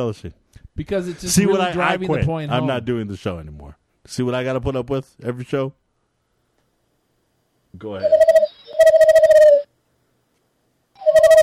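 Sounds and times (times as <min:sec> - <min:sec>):
speech: 0:00.0 - 0:05.8, 0:07.7 - 0:08.4
owl hooting: 0:08.0 - 0:09.7, 0:11.0 - 0:11.4.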